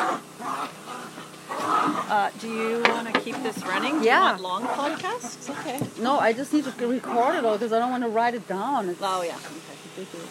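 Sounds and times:
dogs playing rough with high whimpers and whiny yelps: 0.0 - 7.8
speech: 2.1 - 10.2.

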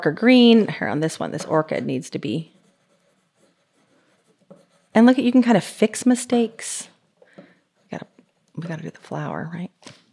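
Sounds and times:
speech: 0.0 - 2.6, 5.0 - 6.9, 7.9 - 10.0
pencil scratching on paper: 1.4 - 6.8.

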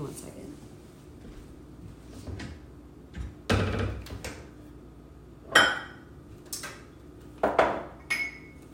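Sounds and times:
wine bottle and glass clinking: 5.5 - 6.1, 7.4 - 8.7.

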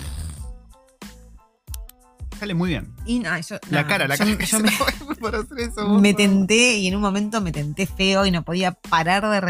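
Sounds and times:
person imitating congested nasal breathing of a woman with a cold: 0.0 - 0.6
speech: 2.4 - 9.4
laughter: 3.8 - 6.2.

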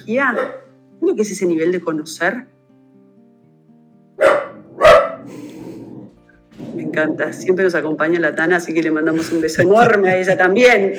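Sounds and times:
speech: 0.0 - 2.6, 6.9 - 10.9
dog barking on a mountain: 0.2 - 0.8, 4.2 - 5.5
laughter: 9.1 - 10.9.

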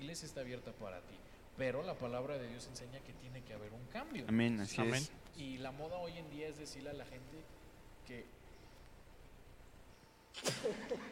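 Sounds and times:
speech: 0.0 - 8.4, 10.4 - 11.0
sneeze: 10.3 - 11.0.

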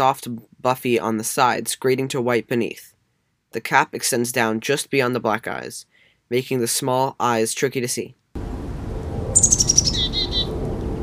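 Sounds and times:
speech: 0.0 - 8.2
soft low rumble: 8.4 - 11.0
black-capped chickadee calls: 9.4 - 10.5.

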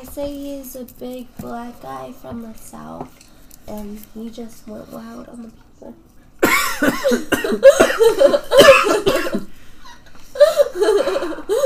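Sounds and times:
speech: 0.1 - 9.5
loud harsh coughs: 6.4 - 11.6.

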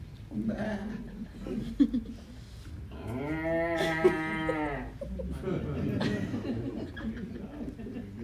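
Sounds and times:
laughter: 0.3 - 2.6, 3.8 - 8.2
speech: 0.4 - 2.2
cattle lowing at night: 2.9 - 5.0.

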